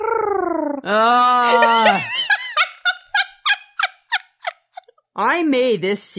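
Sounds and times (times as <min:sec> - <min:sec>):
person imitating cooing pigeons: 0:00.0 - 0:02.1
speech: 0:00.8 - 0:02.2, 0:05.3 - 0:06.1
laughter: 0:01.4 - 0:04.9.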